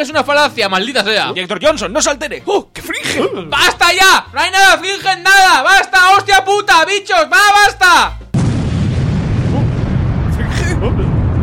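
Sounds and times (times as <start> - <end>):
speech: 0.0 - 8.2
loud explosion sound effect with deep continuous rumbling roar: 8.4 - 11.4.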